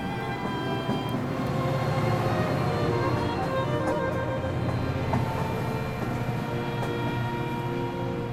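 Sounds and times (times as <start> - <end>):
faint tonal whines: 0.0 - 1.5
train arriving at a station: 0.0 - 8.3.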